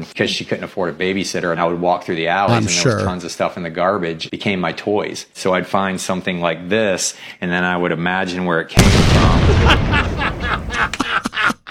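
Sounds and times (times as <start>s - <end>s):
speech: 0.0s - 11.5s
voice imitating an explosion with rough breathy bursts: 2.5s - 3.2s, 8.8s - 10.7s
laughter: 9.2s - 11.6s.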